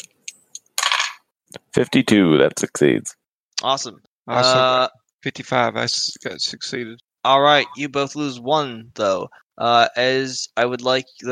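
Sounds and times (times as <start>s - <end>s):
dice rolling on a hard table in a tabletop role-playing game: 0.8s - 1.2s
speech: 1.5s - 11.2s.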